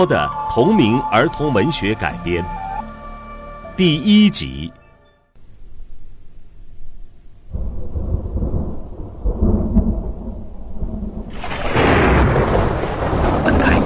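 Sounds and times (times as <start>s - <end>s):
speech: 0.0s - 2.6s, 3.8s - 4.8s
deep rolling thunder on a stormy night: 6.8s - 13.8s
dense hissing downpour of rain: 7.6s - 13.8s.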